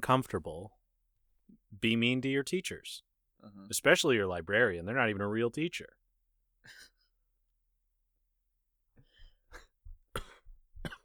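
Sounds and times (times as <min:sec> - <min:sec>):
speech: 0:00.0 - 0:00.8, 0:01.8 - 0:06.0
person coughing: 0:09.5 - 0:11.0.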